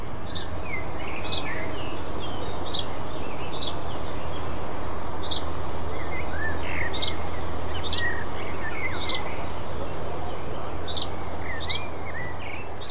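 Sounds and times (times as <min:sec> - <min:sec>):
field cricket chirping in vineyard: 0:00.0 - 0:12.8
other insects: 0:00.0 - 0:12.8.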